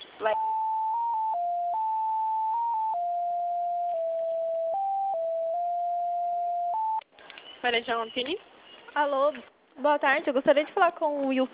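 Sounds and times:
speech: 0.2 - 0.6, 7.6 - 11.5
electronic telephone on-hold tone while a call is being transferred: 0.2 - 7.0.

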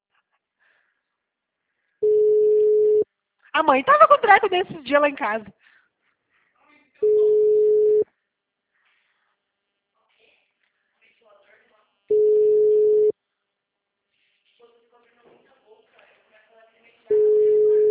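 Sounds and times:
telephone line tone beeps while a call is being placed: 2.0 - 3.0, 7.0 - 8.0, 12.1 - 13.1, 17.1 - 17.8
speech: 3.6 - 5.6.

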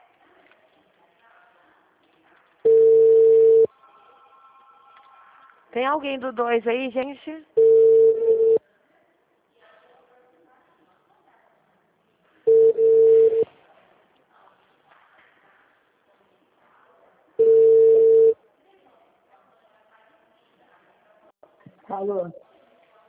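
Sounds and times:
faint murmur: 0.0 - 23.0
telephone line beeps after a dropped call: 2.7 - 3.7, 7.6 - 8.6, 12.5 - 13.5, 17.4 - 18.4
speech: 5.8 - 7.6.

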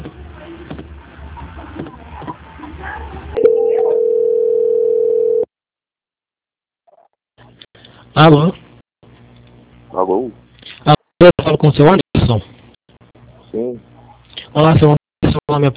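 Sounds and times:
telephone line tone during bank call transfer: 3.4 - 5.5
speech: 8.2 - 8.6, 10.1 - 12.6, 14.6 - 15.7.

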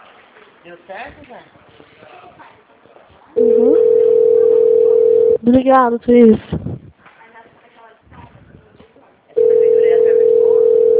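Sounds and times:
speech: 0.6 - 2.2, 5.4 - 6.6
telephone dial tone on a call to a city hall: 3.4 - 5.4, 9.4 - 10.9.

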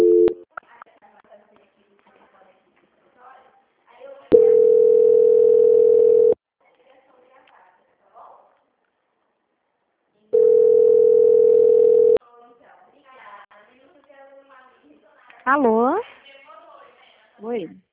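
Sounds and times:
telephone line tone during a call transfer: 0.0 - 0.4, 4.3 - 6.4, 10.4 - 12.2.

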